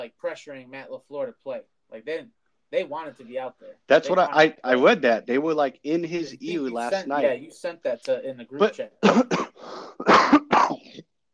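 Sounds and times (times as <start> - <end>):
speech: 0.0 - 10.5
person coughing: 9.0 - 11.1
breathy intake: 9.4 - 10.1.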